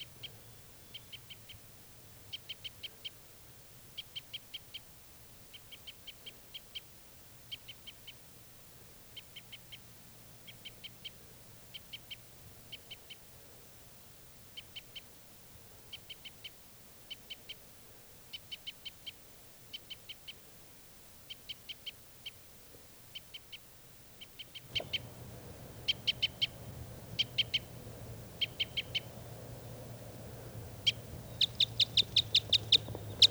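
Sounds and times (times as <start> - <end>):
low rumble: 24.6 - 33.2
wild bird calling in high sharp notes: 24.6 - 33.2.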